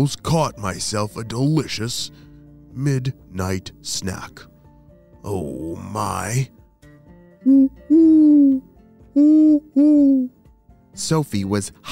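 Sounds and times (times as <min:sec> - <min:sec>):
speech: 0:00.0 - 0:04.5, 0:05.2 - 0:06.6, 0:07.4 - 0:10.4, 0:11.0 - 0:11.9
owl hooting: 0:07.4 - 0:08.6, 0:09.2 - 0:10.3.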